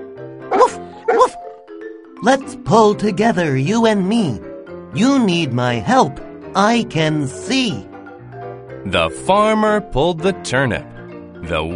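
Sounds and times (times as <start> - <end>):
person imitating a dog with bark-like woofs: 0.5 - 1.4
speech: 2.2 - 7.9, 8.8 - 11.7.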